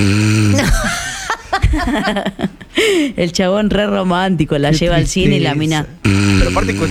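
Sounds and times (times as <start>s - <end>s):
voice imitating snoring: 0.0s - 1.2s, 6.0s - 6.9s
laughter: 0.5s - 3.0s
speech: 1.8s - 6.9s.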